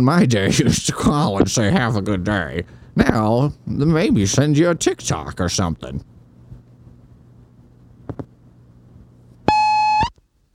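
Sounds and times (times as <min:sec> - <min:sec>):
speech: 0:00.0 - 0:06.1
low hum: 0:00.0 - 0:10.5
loud steady electronic beep: 0:09.5 - 0:10.1.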